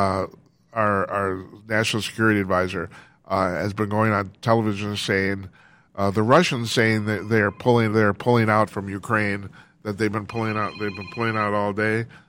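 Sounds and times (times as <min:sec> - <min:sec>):
speech: 0:00.0 - 0:12.2
phone ringing with thin high electronic tones: 0:10.4 - 0:11.6.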